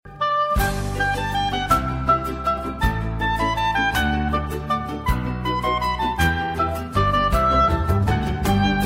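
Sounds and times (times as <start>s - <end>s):
flute playing Christmas music: 0.1s - 8.8s.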